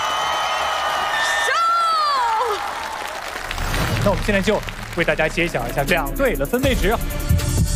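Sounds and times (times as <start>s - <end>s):
high whoops and whistle-like cries: 0.0s - 3.1s
crowd cheering and shouting in support of a dance team at a live competition: 0.0s - 4.4s
speech: 4.0s - 7.6s.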